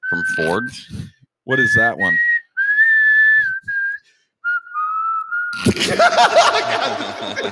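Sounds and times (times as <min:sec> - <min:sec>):
person whistling a tune: 0:00.0 - 0:01.0, 0:02.0 - 0:05.6
speech: 0:00.2 - 0:02.3, 0:05.7 - 0:07.5
loud laughter: 0:05.6 - 0:07.5.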